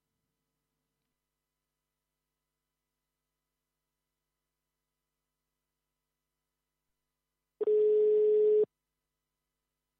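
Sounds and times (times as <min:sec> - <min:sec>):
telephone dial tone while redialing: 0:07.6 - 0:08.7.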